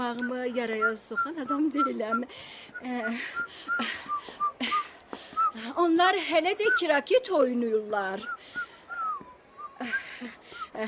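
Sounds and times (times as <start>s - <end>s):
speech: 0.1s - 4.8s, 5.6s - 8.6s, 9.8s - 10.8s
person whistling softly: 0.2s - 5.6s, 8.2s - 10.7s.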